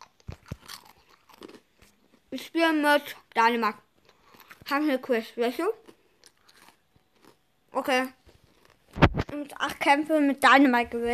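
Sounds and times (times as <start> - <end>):
person chewing crunchy food: 0.0 - 2.3, 3.2 - 4.7, 5.8 - 7.7, 8.3 - 9.0
speech: 2.3 - 3.8, 4.7 - 5.9, 7.8 - 8.2, 9.3 - 11.1.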